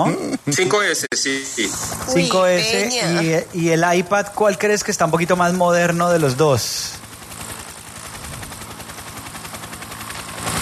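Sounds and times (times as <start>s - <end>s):
speech: 0.0s - 7.0s
small battery-powered helicopter rotor chopping: 1.5s - 3.8s, 4.9s - 10.6s.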